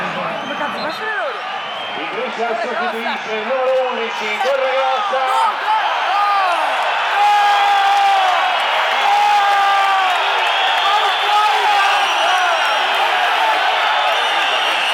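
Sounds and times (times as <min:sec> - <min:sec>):
large stadium crowd shouting and jeering in protest at a player substitution: 0:00.0 - 0:14.9
spectators' whistles in a stadium: 0:00.3 - 0:02.1, 0:10.1 - 0:12.8, 0:14.0 - 0:14.9.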